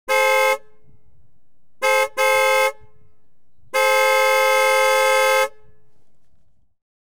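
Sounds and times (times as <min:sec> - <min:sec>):
Rolls Royce Silver Sprite car: 0:00.1 - 0:06.8.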